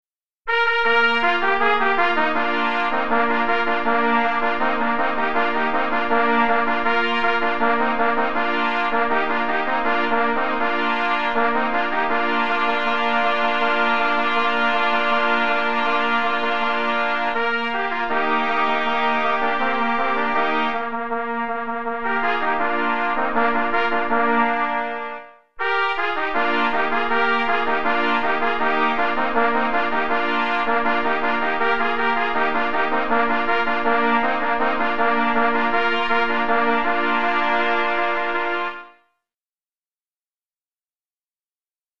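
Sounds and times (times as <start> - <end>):
trumpet trio playing a traditional tune: 0.5 - 39.0.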